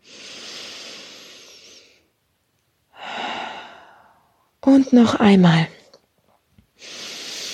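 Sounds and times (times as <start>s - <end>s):
person breathing in and out: 0.0s - 2.2s, 2.9s - 4.4s, 6.8s - 7.5s
speech: 4.7s - 5.8s.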